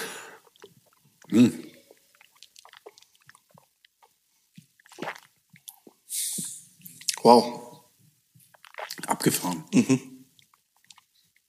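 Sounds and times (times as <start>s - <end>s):
breathy exhale: 0.0s - 0.4s
sips and swallows of rum after a toast: 0.0s - 7.3s, 8.4s - 9.7s, 10.4s - 11.4s
speech: 1.3s - 1.7s, 7.2s - 7.7s, 9.2s - 10.1s.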